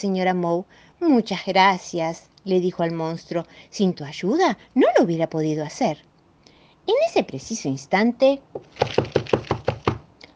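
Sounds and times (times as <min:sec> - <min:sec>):
speech: 0:00.0 - 0:06.1, 0:06.9 - 0:09.2
firm raps knocking on a door: 0:08.6 - 0:10.0.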